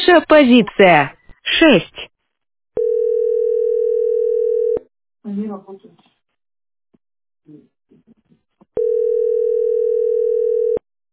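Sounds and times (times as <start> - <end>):
speech: 0.1 - 2.1, 5.2 - 6.1, 7.5 - 8.2
telephone dial tone while a call is being placed: 2.8 - 4.8, 8.8 - 10.8.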